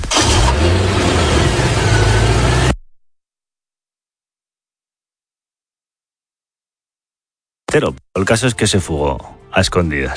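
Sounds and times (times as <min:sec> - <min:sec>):
white car engine cranking, revving and pulling away: 0:00.1 - 0:02.8
speech: 0:07.8 - 0:10.1.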